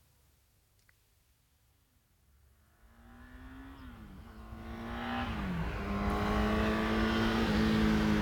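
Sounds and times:
car engine humming as it approaches along a road: 2.7s - 8.2s.

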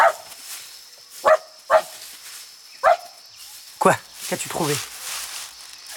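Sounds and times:
small dog barking: 0.0s - 0.3s, 1.2s - 2.0s, 2.8s - 3.2s
speech: 3.8s - 4.9s.

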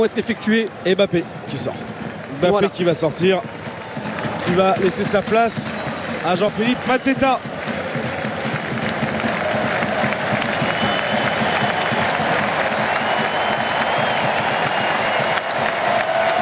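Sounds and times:
speech: 0.0s - 7.6s
football stadium crowd applauding a substituted player: 0.0s - 16.4s.

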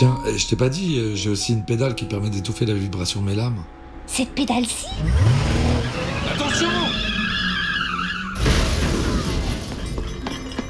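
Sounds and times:
speech: 0.0s - 7.0s
car tire screech during skid: 5.0s - 9.6s.

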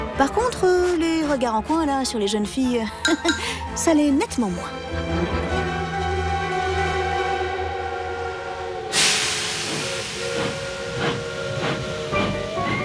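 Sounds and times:
speech: 0.2s - 5.5s
steam locomotive whistle: 6.8s - 12.8s
steam locomotive venting hissing steam: 8.9s - 12.8s.

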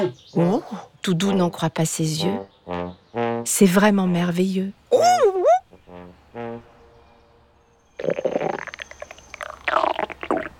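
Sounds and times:
speech: 0.1s - 5.1s
hungry stomach gurgling: 8.0s - 10.5s.

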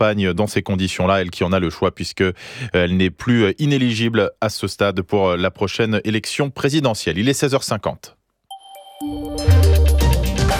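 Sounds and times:
speech: 0.0s - 8.2s
mobile phone notification chimes: 8.5s - 9.8s.

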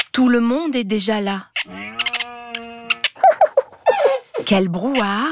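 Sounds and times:
speech: 0.2s - 1.8s, 4.5s - 5.3s
small cat meowing: 1.7s - 3.1s.

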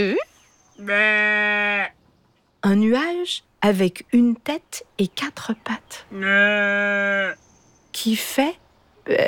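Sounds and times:
speech: 0.0s - 1.2s, 2.6s - 9.2s
sheep bleating: 0.8s - 2.0s, 6.1s - 7.4s.

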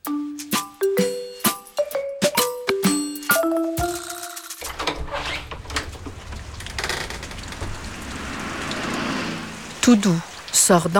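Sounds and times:
short bright chime melody: 0.1s - 4.6s
steady rain pattering and hissing: 4.6s - 10.9s
speech: 9.9s - 10.9s.

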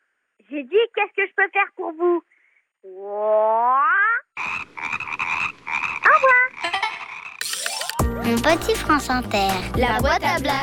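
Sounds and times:
speech: 0.5s - 4.2s, 8.3s - 10.6s
person imitating a frog croaking: 2.8s - 7.8s.

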